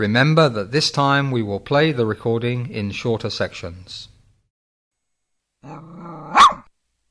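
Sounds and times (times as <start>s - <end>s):
speech: 0.0s - 4.1s, 5.6s - 6.4s
dog giving a low rumbling growl: 5.6s - 6.7s.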